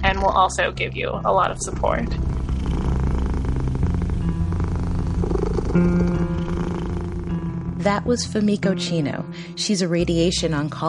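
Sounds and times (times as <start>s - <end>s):
speech: 0.2s - 2.8s, 5.8s - 6.4s, 7.8s - 10.8s
14-year-old male cat purring: 1.3s - 8.2s.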